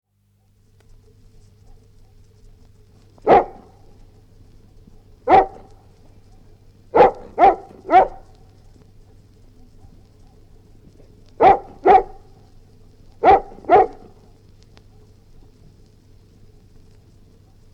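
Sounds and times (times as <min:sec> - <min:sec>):
steady low hum: 0:00.1 - 0:17.7
Golden Retriever growling: 0:03.2 - 0:03.7, 0:05.3 - 0:05.8, 0:07.0 - 0:08.3, 0:11.4 - 0:12.3, 0:13.2 - 0:14.1
Golden Retriever barking in short abrupt bursts: 0:03.2 - 0:04.0, 0:05.2 - 0:06.0, 0:06.9 - 0:08.4, 0:11.3 - 0:12.5, 0:13.2 - 0:14.3.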